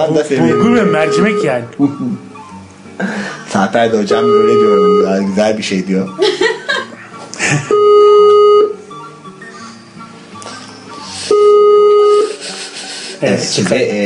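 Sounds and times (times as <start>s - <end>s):
speech: 0.0s - 2.3s, 3.0s - 6.3s, 7.5s - 8.2s, 13.2s - 14.0s
noise: 0.0s - 14.0s
ringback tone from an outgoing phone call: 0.4s - 1.6s, 4.1s - 5.2s, 7.7s - 9.2s, 10.9s - 12.3s
laughter: 6.2s - 7.8s.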